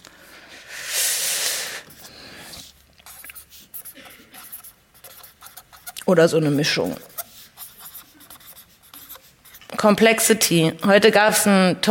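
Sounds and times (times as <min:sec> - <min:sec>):
handwriting in English scratching across a surface: 0:02.0 - 0:11.0
speech: 0:06.1 - 0:07.1, 0:09.8 - 0:11.8.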